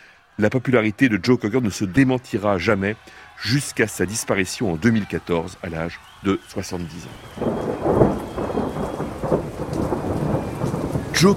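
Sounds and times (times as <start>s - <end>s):
speech: 0.4s - 8.2s, 11.2s - 11.3s
torrential downpour over an outdoor music festival: 6.8s - 11.3s
low thunder rumbles over an outdoor music festival: 7.1s - 11.3s.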